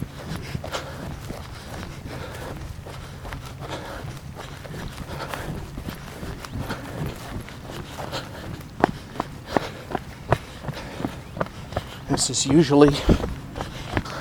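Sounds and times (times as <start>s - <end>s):
footsteps on a wooden footpath leaving a park: 0.0s - 14.1s
speech: 12.3s - 13.4s.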